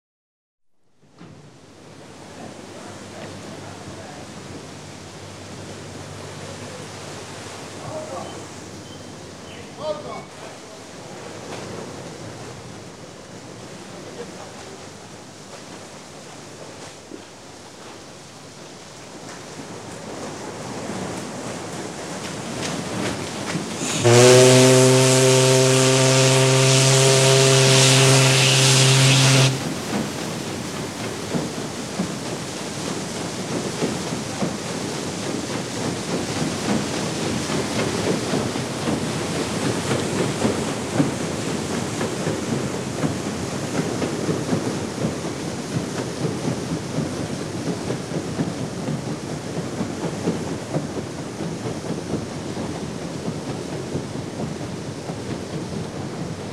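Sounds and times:
paddle steamer departing dock: 0:00.9 - 0:56.5
paddle steamer horn: 0:23.7 - 0:30.2.

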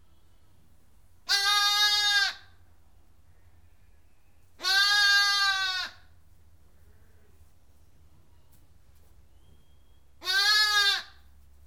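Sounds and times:
sheep bleating: 0:01.3 - 0:02.4, 0:04.6 - 0:06.0, 0:10.2 - 0:11.2.

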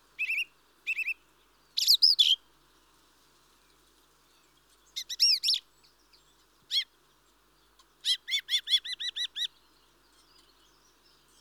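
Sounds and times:
mistle thrush song: 0:00.2 - 0:02.4, 0:03.6 - 0:11.3.

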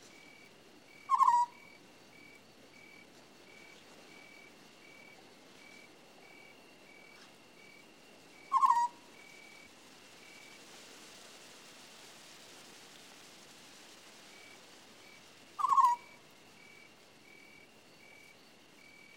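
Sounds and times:
faint pulsing chirps: 0:00.0 - 0:10.6, 0:14.3 - 0:19.1
African scops owl rolling trills: 0:01.0 - 0:02.4, 0:08.4 - 0:09.7, 0:15.6 - 0:16.2.

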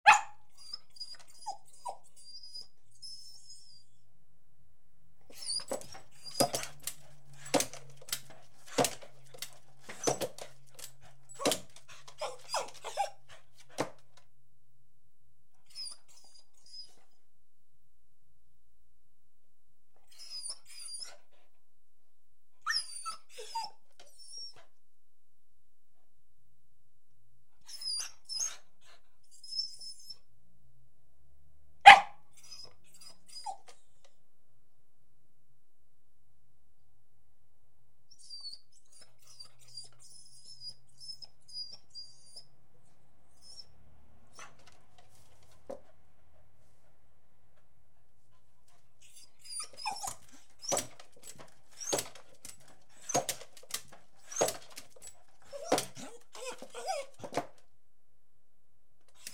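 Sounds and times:
Beagle barking: 0:00.0 - 0:00.4, 0:31.8 - 0:32.2
Beagle whining: 0:00.0 - 0:03.9, 0:05.3 - 0:13.4, 0:20.1 - 0:21.3, 0:22.6 - 0:24.7, 0:27.6 - 0:28.7, 0:31.9 - 0:33.8, 0:38.1 - 0:42.5, 0:43.3 - 0:43.7, 0:49.0 - 0:57.6.

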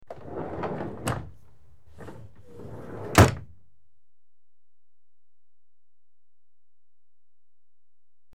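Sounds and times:
carriage interior with doors closed: 0:00.0 - 0:03.5.

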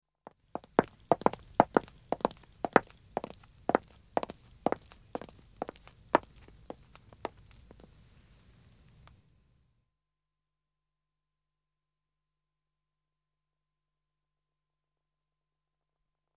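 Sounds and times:
two women walking on dead acoustic wood: 0:00.6 - 0:07.9.

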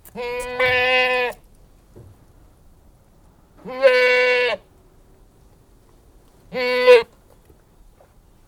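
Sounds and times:
Anglo-Nubian goat bleating: 0:00.1 - 0:01.4, 0:03.6 - 0:04.6, 0:06.5 - 0:07.1.

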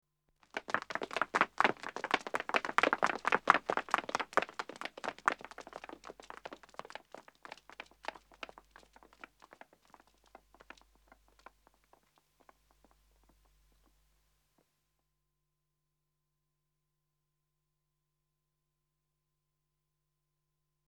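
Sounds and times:
two men and two women running on pavement: 0:00.5 - 0:10.8.

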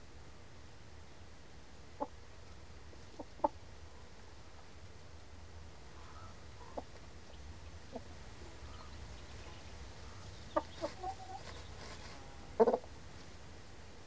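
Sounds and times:
chickens clucking softly: 0:02.0 - 0:02.2, 0:02.9 - 0:04.3, 0:05.9 - 0:14.0
chickens scratching and shuffling: 0:05.9 - 0:14.0.

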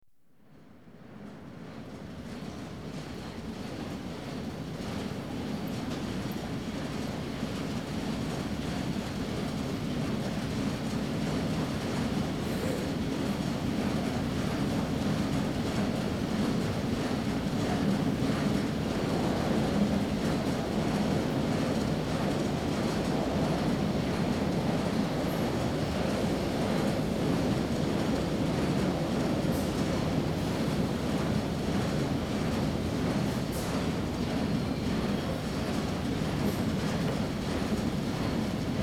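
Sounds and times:
London Underground trains: 0:00.5 - 0:38.8.

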